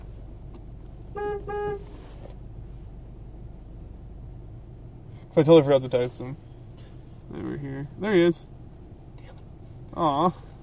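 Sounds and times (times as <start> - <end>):
low engine rumble: 0.0 - 10.6
car horn honking: 1.0 - 2.2
speech: 5.3 - 6.5, 7.6 - 8.6, 10.0 - 10.5.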